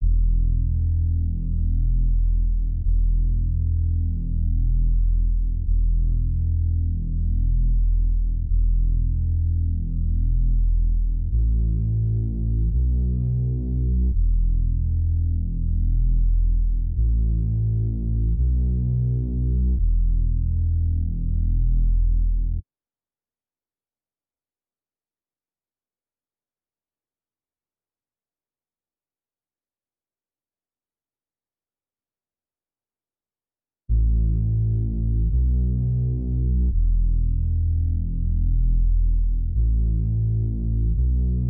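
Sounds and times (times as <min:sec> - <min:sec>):
E minor bass loop at 170 BPM: 0:00.0 - 0:22.6, 0:33.9 - 0:41.4.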